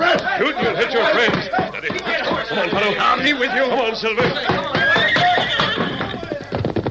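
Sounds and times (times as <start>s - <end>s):
laughter: 0.0s - 6.5s
horse hoofbeats clattering: 0.6s - 6.8s
speech: 2.9s - 4.7s
horse whinnying: 4.8s - 6.6s.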